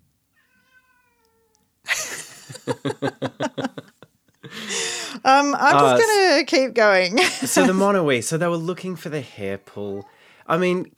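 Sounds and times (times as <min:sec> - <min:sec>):
cat meowing outside wanting to come in: 0:00.3 - 0:01.7, 0:09.3 - 0:10.3
laughter: 0:01.9 - 0:05.0, 0:07.2 - 0:08.1
speech: 0:02.6 - 0:03.8, 0:05.3 - 0:10.9.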